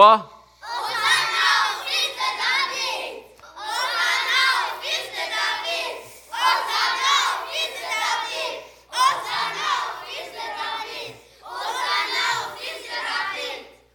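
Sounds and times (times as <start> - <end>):
group of children shouting a praise phrase in unison: 0.6 - 13.6.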